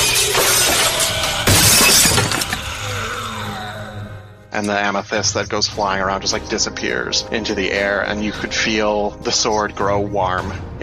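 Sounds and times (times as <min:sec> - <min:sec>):
crystal shards tinkling: 0:00.0 - 0:02.7
crystal box shattering: 0:00.0 - 0:03.0
speech: 0:04.6 - 0:10.8.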